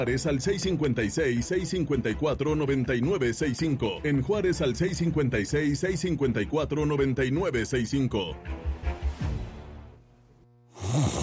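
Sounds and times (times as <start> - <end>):
speech: 0.0 - 8.8
rough rattling snoring: 10.7 - 11.2.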